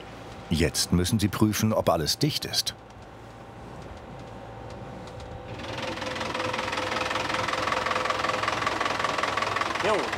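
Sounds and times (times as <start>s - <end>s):
speech: 0.5s - 2.9s
100 hp four-cylinder Yanmar boat engine driving a fixed propeller: 5.6s - 10.1s.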